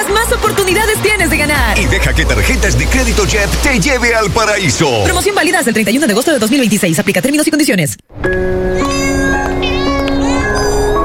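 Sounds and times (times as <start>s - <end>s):
speech: 0.0s - 8.6s
cat meowing: 8.8s - 11.0s.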